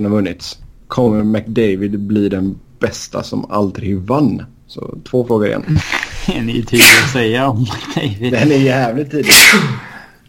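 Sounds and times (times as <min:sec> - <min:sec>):
speech: 0:00.0 - 0:09.9
sneeze: 0:06.8 - 0:07.2, 0:09.2 - 0:10.0
laughter: 0:07.5 - 0:08.9.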